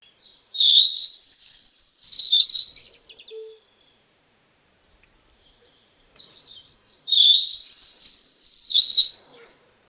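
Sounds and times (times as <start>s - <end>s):
bird calling with fast high twittering and chirping warbles: 0.0s - 4.0s, 5.4s - 9.7s.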